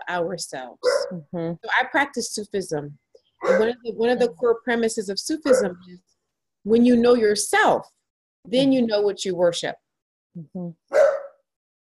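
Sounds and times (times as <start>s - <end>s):
speech: 0.1s - 9.8s, 10.4s - 11.1s
dog yipping and barking: 0.8s - 1.1s, 3.4s - 3.8s, 5.5s - 5.8s, 10.9s - 11.4s.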